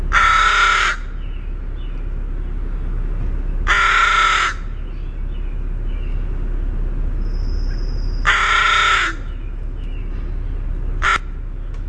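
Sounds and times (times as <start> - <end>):
northern crested caracara harsh rattling call and rasp: 0.1 - 11.7
thin steady whistle from another bird: 7.2 - 8.2.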